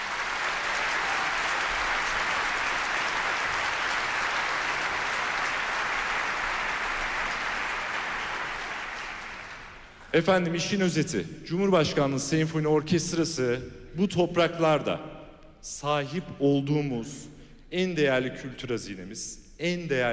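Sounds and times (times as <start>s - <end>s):
large audience applause in a reverberant hall: 0.0s - 10.1s
speech: 10.2s - 20.1s.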